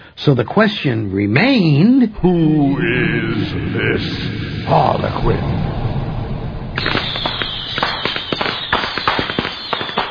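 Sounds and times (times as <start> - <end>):
speech: 0.2 - 5.8
firecracker rockets popping and banging: 6.8 - 10.0.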